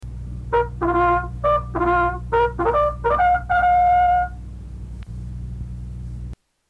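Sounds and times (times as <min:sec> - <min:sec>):
bugle call: 0:00.5 - 0:04.4.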